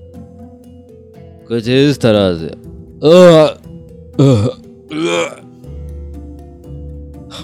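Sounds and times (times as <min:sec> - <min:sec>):
speech: 0:01.5 - 0:03.6, 0:04.2 - 0:05.5
person vocally imitating retching and vomiting: 0:04.2 - 0:05.4.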